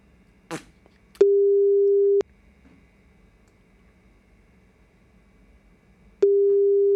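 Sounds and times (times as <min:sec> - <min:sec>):
ringback tone of a phone call back that nobody answers: 0:01.2 - 0:02.2, 0:06.2 - 0:06.9.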